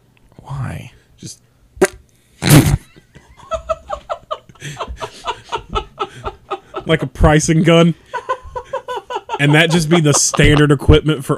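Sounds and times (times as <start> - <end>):
speech: 0.5 - 1.5, 6.9 - 8.1, 9.4 - 11.3
spluttering mouth raspberry mimicking a fart: 1.8 - 2.9, 9.5 - 10.7
rhythmic breathy laughter: 2.6 - 10.8.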